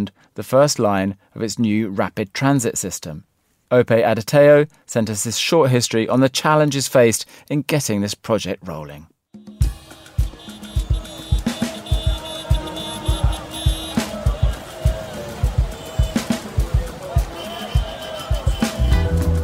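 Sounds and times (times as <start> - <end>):
speech: 0.0 - 9.4
car horns hooting: 9.4 - 19.4
indistinct voices murmuring: 10.0 - 19.4.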